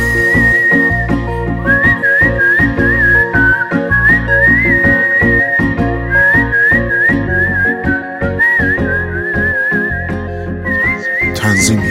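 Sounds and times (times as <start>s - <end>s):
person whistling a wavering tune: 0.0s - 11.8s.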